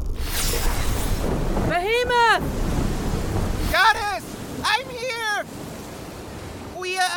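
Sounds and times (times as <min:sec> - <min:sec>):
storm-tossed ocean waves crashing and churning around a small boat: 0:00.2 - 0:07.1
raised voices shouting for help: 0:03.7 - 0:05.5.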